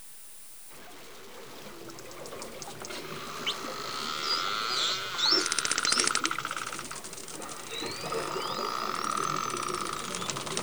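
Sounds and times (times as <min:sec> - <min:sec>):
dolphin fast buzzing click train recorded underwater: 0:02.6 - 0:10.6
dolphin whistles recorded underwater: 0:02.9 - 0:10.6.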